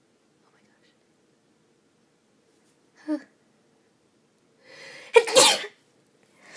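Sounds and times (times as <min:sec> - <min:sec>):
person sneezing: 0:05.1 - 0:05.8.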